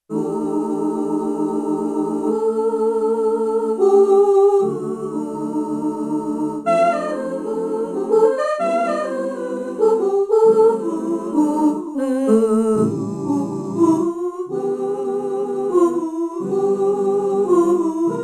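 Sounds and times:
sampled pop voice singing ooo on a Yamaha TX16W sampler: 0.1 - 18.2.

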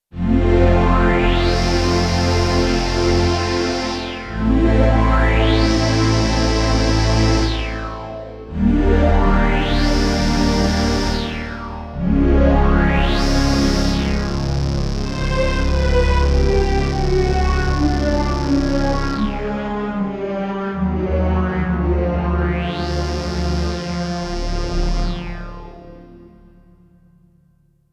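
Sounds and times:
Roland D-70 synthesizer sweep: 0.3 - 26.9.

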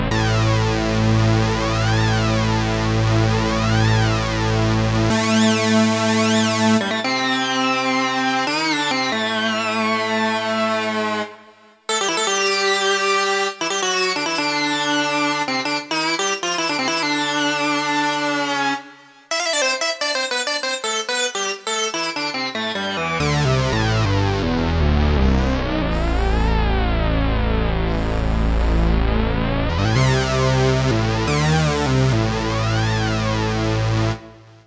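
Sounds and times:
synthesizer sound from an Akai SG01v sound module: 0.1 - 34.3.

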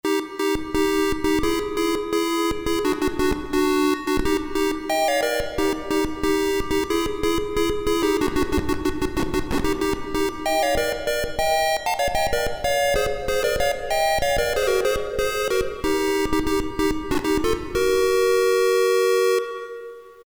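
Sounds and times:
Davoli Davolisint synthesizer: 0.0 - 20.2.

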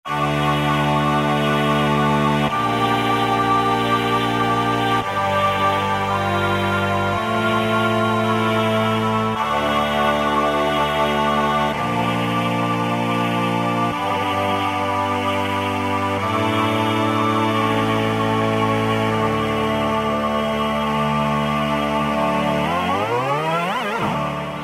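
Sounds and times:
synthesized choir on a Roland V-Synth factory patch: 0.0 - 24.6.

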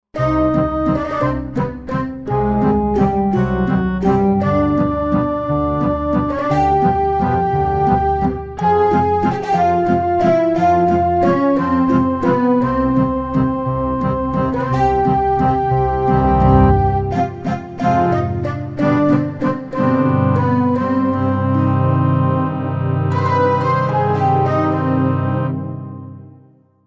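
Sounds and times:
string and woodwind synth on a Korg Wavestation: 0.2 - 26.3.

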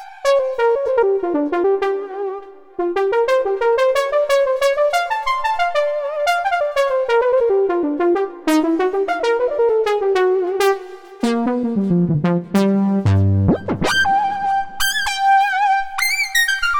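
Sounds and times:
Roland JD-800 synthesizer fusion solo factory patch: 0.4 - 16.6.

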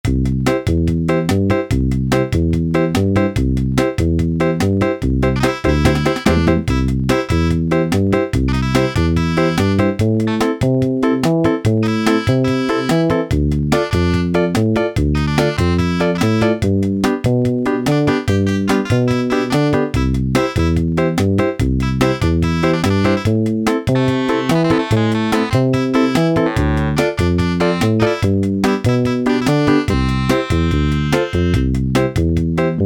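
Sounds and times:
rock and roll factory demo on Yamaha SHS-10 keytar: 0.0 - 32.8.

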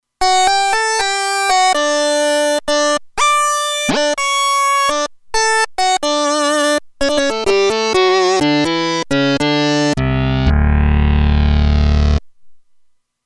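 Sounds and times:
synthesizer lead: 0.2 - 5.0, 5.8 - 12.2.

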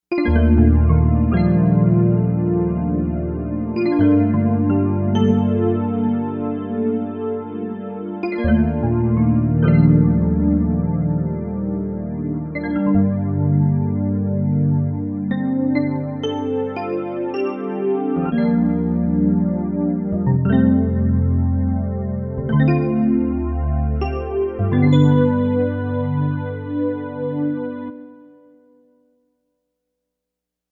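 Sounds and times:
bright electric piano pad on a synthesizer: 0.1 - 28.6.

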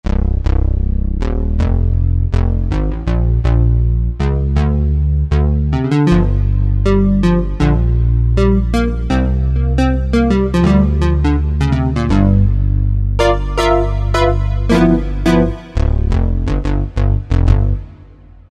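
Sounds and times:
analog bass on a Korg M1 synthesizer: 0.0 - 18.5.

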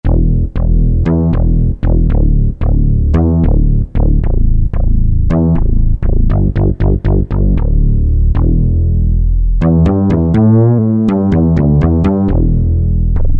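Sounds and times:
synthesizer bass: 0.0 - 13.3.

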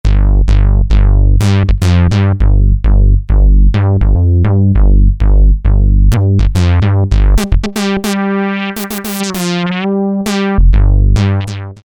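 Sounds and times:
synthesizer factory sliding bass patch: 0.0 - 11.8.

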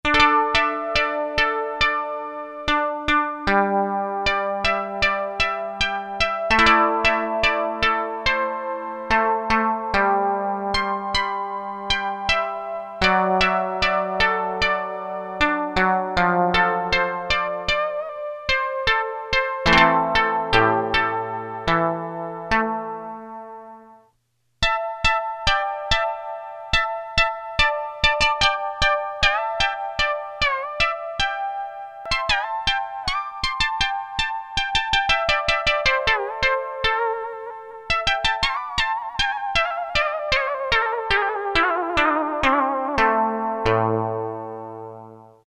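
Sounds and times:
Casio MT-600 keyboard koto tone: 0.0 - 24.0, 24.6 - 45.4.

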